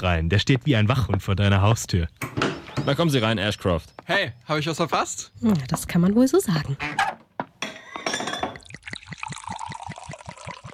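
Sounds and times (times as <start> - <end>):
speech: 0.0 - 7.2
glasses clinking for a toast: 2.3 - 3.4, 7.6 - 10.5
sherry glugging into a glass: 7.7 - 10.7.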